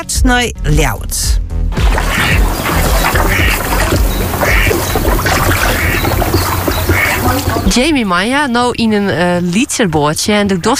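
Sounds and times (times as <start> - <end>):
speech: 0.0 - 1.4, 7.3 - 10.7
outdoor noise: 1.6 - 10.7
constant wash of water during a canoe crossing: 1.7 - 8.3
canoe paddle strokes splashing: 1.8 - 7.9.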